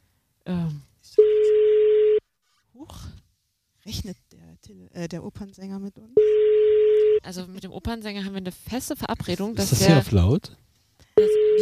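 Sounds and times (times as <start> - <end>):
steady single-pitched telephone tone during dialing: 1.2 - 2.2, 6.2 - 7.2, 11.2 - 11.6
speech: 3.9 - 6.6, 7.2 - 10.6, 11.2 - 11.6.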